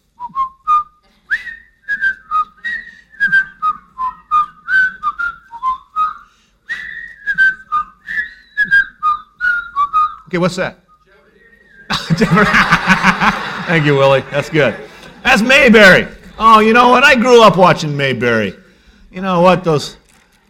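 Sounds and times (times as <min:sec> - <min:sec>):
man whistling a bright bouncy TV theme tune: 0:00.2 - 0:12.1
speech: 0:10.3 - 0:10.8, 0:12.2 - 0:20.4
laughter: 0:11.9 - 0:16.4.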